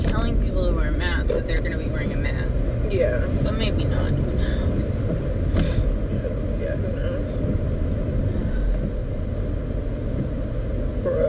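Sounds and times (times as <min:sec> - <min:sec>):
road noise inside a moving car: 0:00.0 - 0:11.2.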